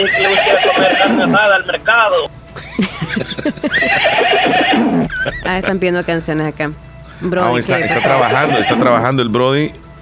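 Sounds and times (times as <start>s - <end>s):
speech: 0.0s - 9.8s
horse neighing: 0.2s - 1.4s, 3.8s - 5.7s
laughter: 2.6s - 6.0s, 7.8s - 8.8s.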